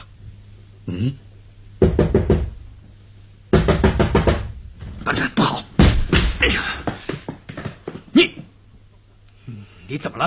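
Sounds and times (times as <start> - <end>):
speech: 0.9 - 1.2
knocking on a door: 1.8 - 2.6, 3.5 - 4.9, 5.8 - 8.0.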